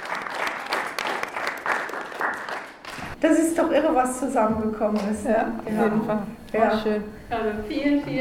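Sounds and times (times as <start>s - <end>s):
indoor audience applause at a film premiere: 0.0s - 3.2s
speech: 3.2s - 8.2s.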